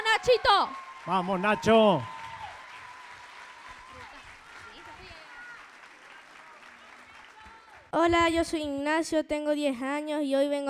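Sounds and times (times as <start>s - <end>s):
audience applause: 0.0s - 7.9s
people calling out and cheering: 0.0s - 8.2s
speech: 0.2s - 2.2s, 7.9s - 10.6s.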